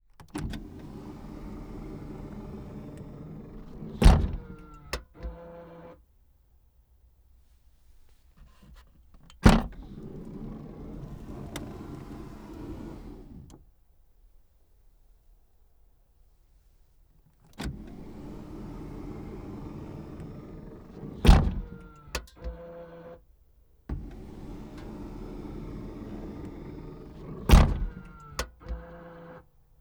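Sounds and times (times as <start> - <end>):
BMW 420D Gran Coupe back door opening and closing: 0.4 - 6.0, 9.4 - 13.6, 17.6 - 23.2, 23.9 - 29.5.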